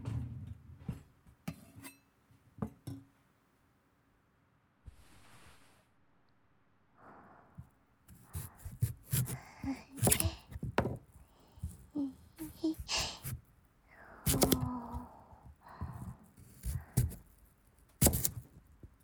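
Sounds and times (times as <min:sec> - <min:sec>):
soft breathy sounds: 0:06.9 - 0:17.4
kitchen knife chopping a peeled carrot on a cutting board: 0:08.1 - 0:13.5, 0:14.3 - 0:15.0, 0:15.8 - 0:19.0.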